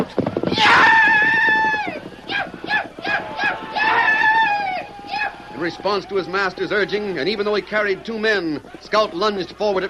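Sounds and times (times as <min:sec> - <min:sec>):
man on horseback yelling wild war whoops: 0:00.6 - 0:05.4
speech: 0:05.8 - 0:09.8.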